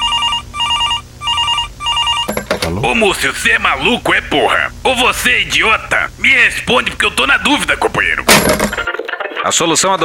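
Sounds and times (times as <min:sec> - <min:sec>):
telephone ringing with warbling electronic tone: 0:00.0 - 0:03.3
speech: 0:02.7 - 0:10.0.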